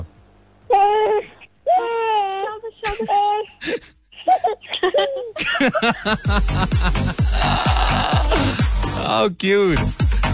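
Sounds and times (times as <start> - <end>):
baby crying in drawn-out wails: 0.7 - 5.4, 7.2 - 8.6
laughter: 4.8 - 7.2
speech: 5.6 - 10.0.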